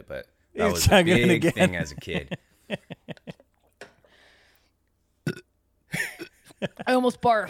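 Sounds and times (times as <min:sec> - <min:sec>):
speech: 0:00.1 - 0:02.9, 0:06.6 - 0:07.4
laughter: 0:00.6 - 0:03.5, 0:05.9 - 0:07.0
person burping deliberately: 0:05.2 - 0:06.5.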